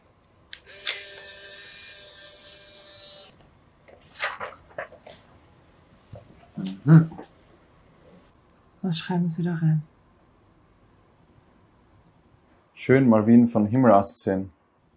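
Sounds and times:
camera shutter click: 0.6 - 1.5
speech: 6.8 - 7.2, 8.9 - 9.9, 12.8 - 14.6.

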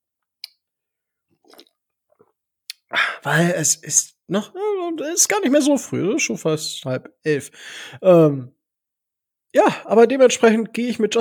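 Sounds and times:
coffee being sipped with wet slurping: 1.4 - 1.8
mouth click: 2.7 - 2.9
speech: 3.2 - 8.6, 9.5 - 11.1.

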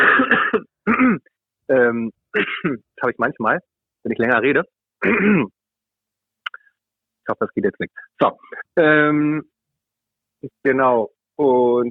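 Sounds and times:
person coughing: 0.0 - 1.3, 2.4 - 2.8, 5.0 - 5.5
person with a frog in their throat clearing throat: 0.0 - 1.3, 2.4 - 2.8, 5.0 - 5.5
speech: 1.9 - 5.6, 7.3 - 9.5, 10.4 - 11.9.

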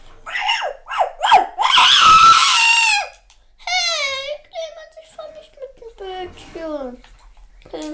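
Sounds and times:
dog yelping sharply: 0.2 - 3.2.

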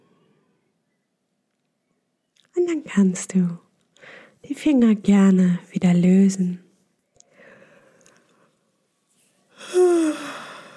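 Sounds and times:
speech: 2.6 - 6.6
person yawning: 9.6 - 10.7.

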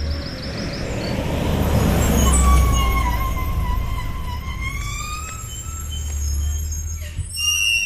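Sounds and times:
large bus engine rumbling and idling: 0.0 - 7.8
bus air brakes squealing and hissing: 2.0 - 7.8.

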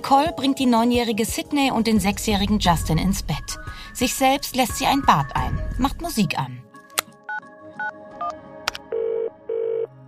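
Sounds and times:
speech: 0.1 - 6.6
telephone ringing tone: 8.9 - 9.9.

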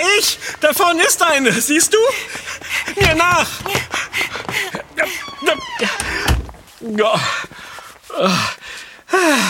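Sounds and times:
speech: 0.2 - 7.6, 8.2 - 9.4
door opening and shutting: 3.0 - 3.9, 5.2 - 6.6
dull thud: 3.0 - 3.9.

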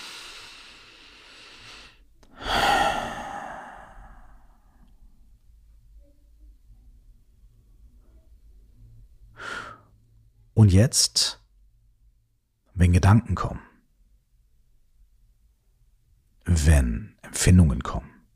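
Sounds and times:
deep breath in through the nose and out through the mouth in a guided meditation: 0.0 - 4.9, 9.3 - 10.0
speech: 10.6 - 11.4, 12.8 - 13.7, 16.6 - 18.1.

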